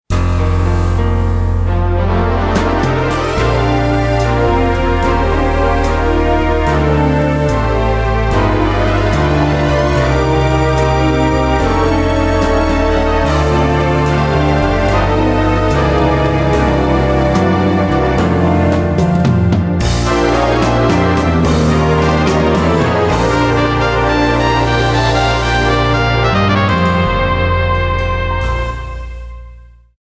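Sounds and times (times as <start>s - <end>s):
Lowrey strings: 0.2s - 28.7s.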